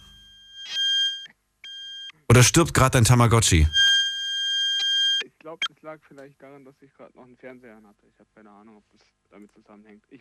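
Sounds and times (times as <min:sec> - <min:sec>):
beeping interference on a phone line: 0:00.0 - 0:05.7
speech: 0:02.3 - 0:04.0, 0:05.9 - 0:10.1.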